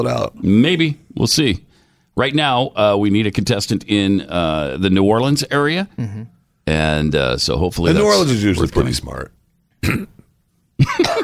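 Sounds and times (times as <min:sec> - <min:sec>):
speech: 0:00.0 - 0:10.2, 0:10.8 - 0:11.2
person coughing harshly: 0:09.8 - 0:11.2.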